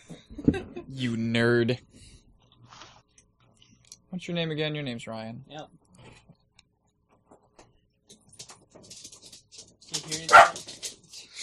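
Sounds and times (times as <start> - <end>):
speech: 0.5 - 2.1, 4.1 - 5.8
dog barking: 10.3 - 10.6.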